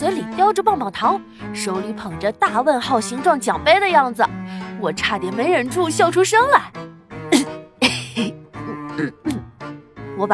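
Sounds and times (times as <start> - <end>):
speech: 0.0 - 7.6, 9.0 - 9.3
person faking a cough: 7.3 - 8.4, 9.0 - 9.4.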